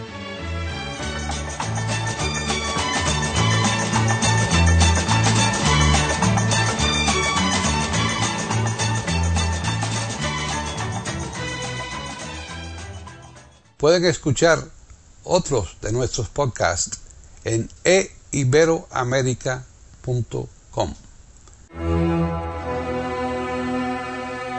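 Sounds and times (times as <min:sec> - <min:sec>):
instrumental arrangement of a symphony's choral final movement: 0:00.0 - 0:13.5, 0:21.7 - 0:24.5
rhythmic bass line: 0:00.7 - 0:13.5
speech: 0:13.8 - 0:21.0.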